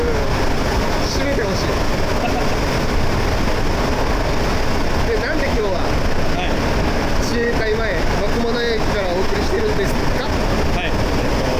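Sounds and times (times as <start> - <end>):
subway train in motion heard from inside the carriage: 0.0 - 11.5.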